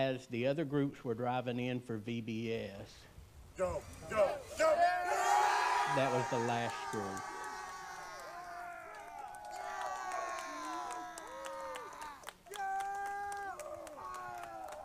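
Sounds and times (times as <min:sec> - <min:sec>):
speech: 0:00.0 - 0:04.8, 0:05.9 - 0:07.3
group of people cheering and shouting together: 0:03.6 - 0:14.8.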